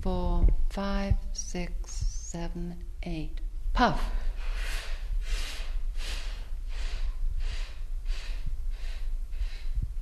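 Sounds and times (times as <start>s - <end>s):
speech: 0.0s - 5.4s
low rumble: 0.0s - 10.0s
group breathing in through their noses: 4.3s - 9.8s.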